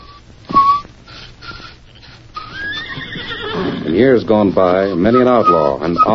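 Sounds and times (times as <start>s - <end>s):
soft monotonous human whistling by an outlaw leader: 0.0s - 1.8s, 4.8s - 6.1s
speech: 3.9s - 6.1s.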